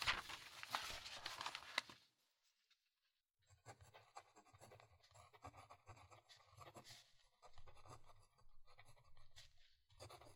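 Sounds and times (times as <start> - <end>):
paper rustling: 0.0 - 2.1
pen scratching on paper writing a manuscript: 3.5 - 10.3.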